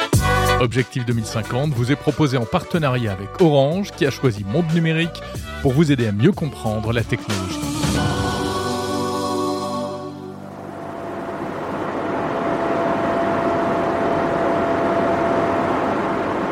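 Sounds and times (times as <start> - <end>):
speech: 0.6 - 8.2
data center servers humming: 7.6 - 16.4
data center server cooling fans whooshing: 10.1 - 16.4
faint constant whine: 10.2 - 16.4.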